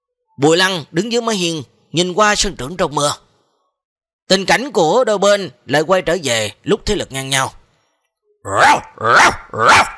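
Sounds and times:
speech: 0:00.4 - 0:03.2, 0:04.3 - 0:07.6, 0:08.4 - 0:09.9
yellow dog barking fiercely: 0:08.5 - 0:09.9.

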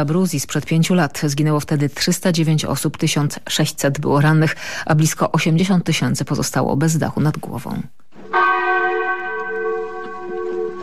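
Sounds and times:
speech: 0:00.0 - 0:08.6
church bell tolling at a memorial for earthquake victims: 0:08.2 - 0:10.8.

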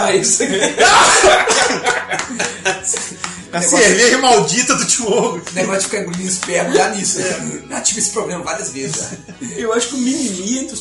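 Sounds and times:
laughter: 0:00.0 - 0:07.6, 0:08.6 - 0:09.9
speech: 0:00.0 - 0:10.7
person coughing: 0:01.0 - 0:02.0.

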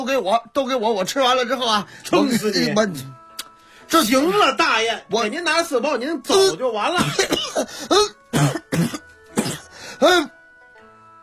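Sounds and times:
speech: 0:00.0 - 0:03.2, 0:03.9 - 0:09.0, 0:10.0 - 0:10.3
person coughing from spicy food in a steamed bun: 0:07.0 - 0:10.3.

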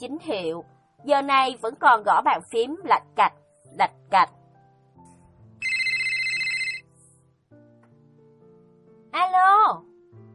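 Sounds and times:
speech: 0:00.0 - 0:04.4, 0:09.2 - 0:09.9
telephone ringing while a call is placed: 0:05.6 - 0:06.9.

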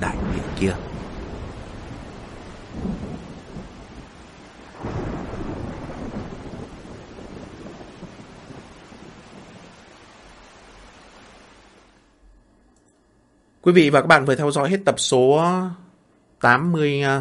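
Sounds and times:
speech: 0:00.0 - 0:01.0, 0:13.7 - 0:15.8, 0:16.4 - 0:17.1
deep rumbles of thunder: 0:00.0 - 0:12.0
heavy rain: 0:00.0 - 0:12.1.

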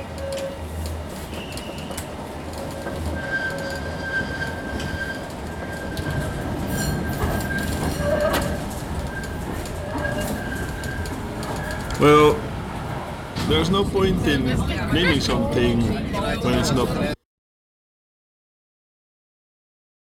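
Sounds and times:
tram rumbling on rails: 0:00.0 - 0:17.2
thin metallic squeals and whines of tram: 0:01.3 - 0:12.0
speech: 0:12.0 - 0:12.4, 0:13.6 - 0:17.2.

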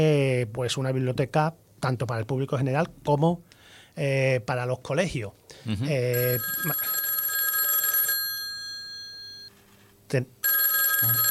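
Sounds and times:
speech: 0:00.0 - 0:07.0, 0:10.1 - 0:10.4
telephone ringing with an incoming call: 0:06.2 - 0:09.8, 0:10.4 - 0:11.3.

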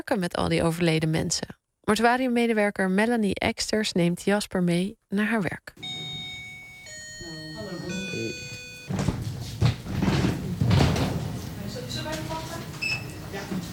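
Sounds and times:
speech: 0:00.1 - 0:06.0
soft knocks: 0:05.8 - 0:12.6
room door in a mortuary shut with a dull thud: 0:08.5 - 0:13.6.

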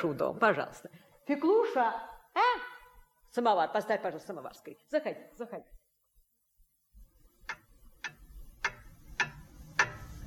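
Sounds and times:
speech: 0:00.0 - 0:02.7, 0:03.3 - 0:05.8
clocks ticking at home: 0:07.3 - 0:10.2.

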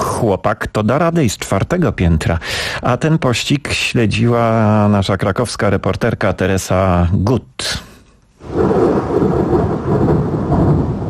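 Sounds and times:
speech: 0:00.2 - 0:08.8
loud rumbling thunder during a storm: 0:08.4 - 0:11.0.

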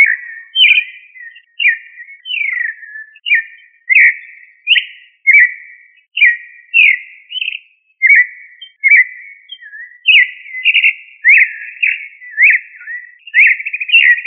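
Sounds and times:
thrush of the family Turdidae singing whistled notes: 0:00.0 - 0:14.2.

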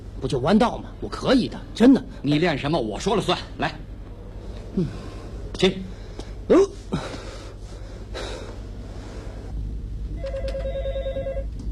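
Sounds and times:
speech: 0:00.2 - 0:03.9, 0:04.8 - 0:07.0
short breathy sounds: 0:04.5 - 0:09.6
telephone ringing with electronic trill: 0:10.2 - 0:11.6.

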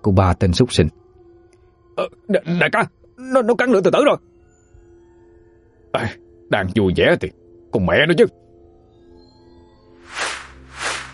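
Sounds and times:
speech: 0:00.0 - 0:01.0, 0:02.0 - 0:04.3, 0:05.9 - 0:08.4
arrows whooshing through the air: 0:10.1 - 0:11.1.

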